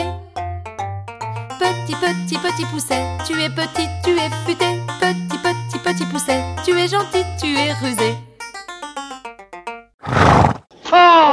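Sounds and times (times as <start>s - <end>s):
speech: 1.6s - 8.2s
horse whinnying and neighing: 10.0s - 10.6s
horse giving a loud breathy snort: 10.0s - 10.7s.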